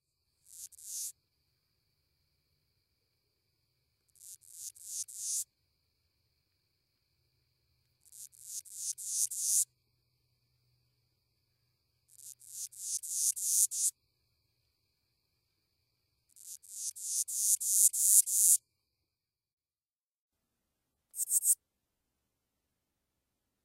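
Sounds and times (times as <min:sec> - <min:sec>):
faint steady high insect hum: 0:00.0 - 0:19.4, 0:21.2 - 0:21.6
broad-winged bush katydid lisping ticks: 0:00.4 - 0:01.2, 0:04.1 - 0:05.5, 0:08.0 - 0:09.7, 0:12.1 - 0:14.0, 0:16.3 - 0:18.6, 0:21.1 - 0:21.6.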